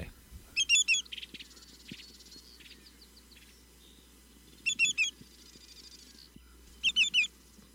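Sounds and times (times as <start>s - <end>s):
greater yellowlegs calling: 0.5s - 3.0s, 4.6s - 5.2s, 6.4s - 7.3s.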